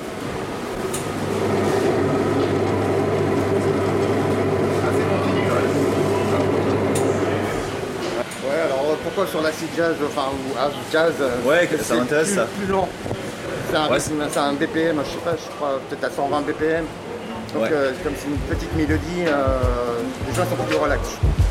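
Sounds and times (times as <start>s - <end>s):
deli meat slicer motor whirring: 0.2s - 8.2s
speech: 9.2s - 13.1s, 13.7s - 21.3s.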